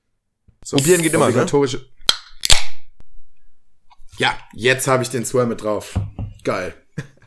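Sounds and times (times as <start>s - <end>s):
speech: 0.6s - 2.0s, 4.2s - 7.1s
drink can cracked open with click, pop and fizz: 0.8s - 1.5s, 2.1s - 2.7s.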